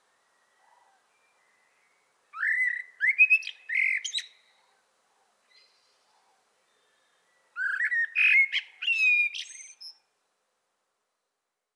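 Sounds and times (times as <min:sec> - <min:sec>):
common blackbird Turdus merula singing a warbling phrase: 0:02.4 - 0:04.6, 0:07.6 - 0:10.0.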